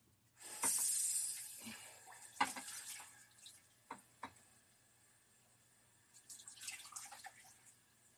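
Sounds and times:
water running from a tap: 0.5s - 3.6s, 6.2s - 7.7s.

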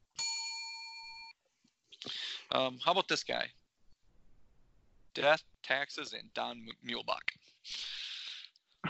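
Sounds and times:
single bright bell ringing: 0.2s - 1.3s
speech: 2.5s - 3.6s, 5.2s - 7.9s.

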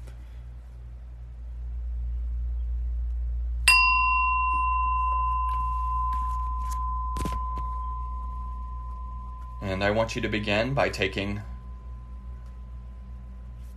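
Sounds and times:
low steady hum: 0.0s - 13.7s
meditation bell ringing: 3.7s - 13.5s
speech: 9.8s - 11.5s.

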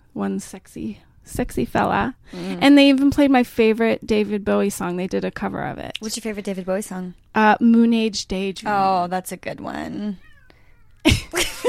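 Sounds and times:
speech: 0.2s - 10.2s
cat meowing with strained raspy calls: 10.2s - 11.0s.

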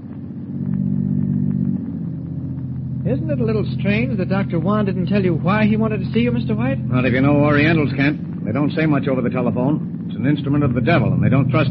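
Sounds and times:
motor car engine purring: 0.0s - 11.6s
speech: 3.0s - 11.6s.

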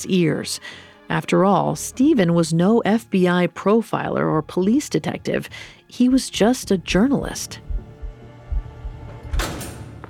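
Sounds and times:
speech: 0.0s - 7.7s
heavy secure prison door swinging open: 9.0s - 10.0s.

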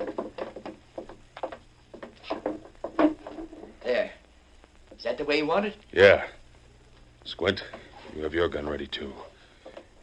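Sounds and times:
wooden chair shuffled and set down in a farmhouse kitchen: 0.0s - 3.8s
low hum: 0.0s - 10.0s
speech: 5.0s - 6.4s, 7.2s - 9.3s.

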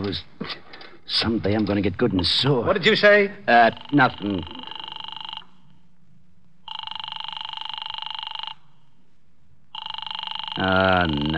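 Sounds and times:
low hum: 0.0s - 11.3s
speech: 0.1s - 4.6s, 10.6s - 11.3s
telephone ringing unanswered in a man's office: 3.5s - 5.8s, 6.6s - 8.9s, 9.7s - 11.3s.

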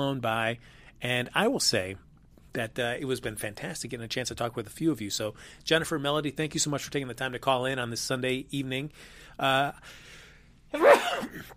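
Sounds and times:
speech: 0.0s - 11.5s
sneeze: 10.8s - 11.5s.

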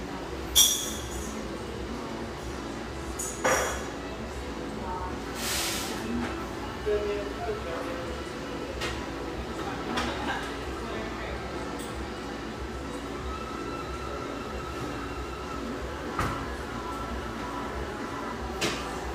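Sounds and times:
glass and cutlery clinking: 0.5s - 1.4s
murmur of indistinct conversation in a warm café: 1.2s - 19.1s.

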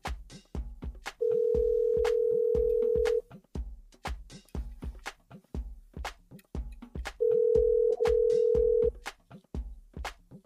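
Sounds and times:
rhythmic music beat: 0.0s - 10.4s
outgoing telephone ringing tone: 1.2s - 3.2s, 7.2s - 8.9s.

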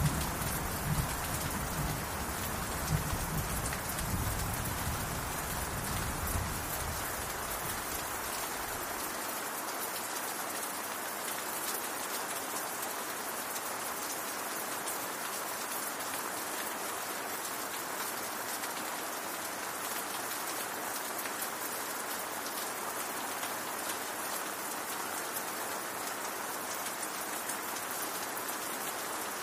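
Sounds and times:
low rumble of thunder: 0.0s - 6.9s
steady dense rain on a castle: 0.0s - 29.4s.

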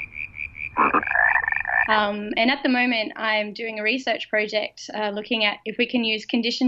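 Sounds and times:
cane toad calling in a fast trill: 0.0s - 2.0s
speech: 1.9s - 6.6s.

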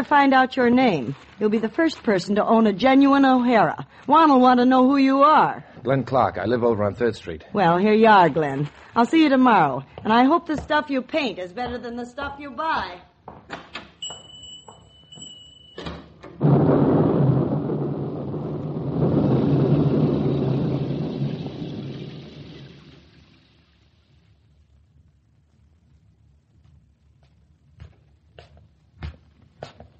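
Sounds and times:
speech: 0.0s - 13.6s
heavy roll of thunder: 16.3s - 25.2s
rush of rain: 16.4s - 25.7s.

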